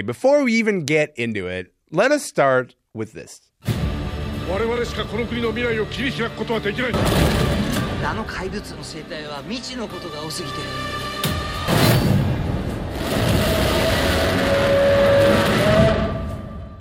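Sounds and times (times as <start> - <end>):
speech: 0.0 - 3.7, 4.5 - 11.0
cinematic booms, crashes and rumbling impacts in a movie trailer: 6.9 - 8.3, 11.7 - 16.7
giant monster roar in a movie trailer: 12.9 - 16.2.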